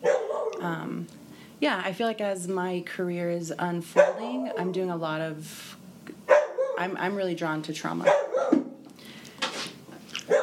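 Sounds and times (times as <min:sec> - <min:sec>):
dog barking: 0:00.0 - 0:00.6, 0:04.0 - 0:04.7, 0:06.3 - 0:06.8, 0:08.0 - 0:08.8, 0:10.3 - 0:10.4
speech: 0:00.6 - 0:05.8, 0:06.8 - 0:08.4.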